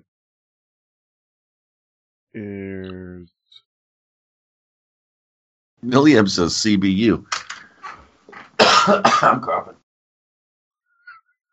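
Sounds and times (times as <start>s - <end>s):
speech: 2.3s - 3.6s, 5.8s - 7.4s, 8.8s - 9.8s
person coughing: 8.6s - 9.6s.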